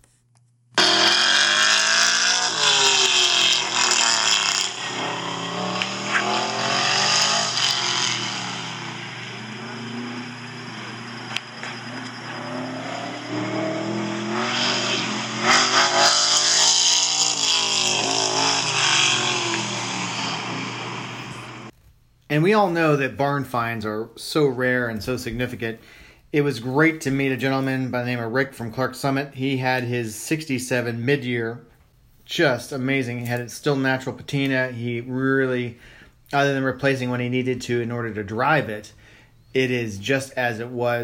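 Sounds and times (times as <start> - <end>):
big-block V8 car engine roaring and revving at autocross: 0.8 - 21.7
speech: 22.4 - 31.7, 32.3 - 41.0.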